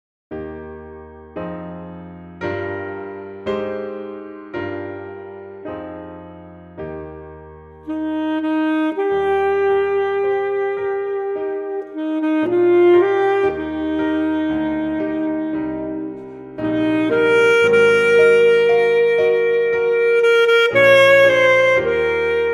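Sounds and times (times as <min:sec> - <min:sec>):
folk blues saxophone: 0:07.8 - 0:22.5.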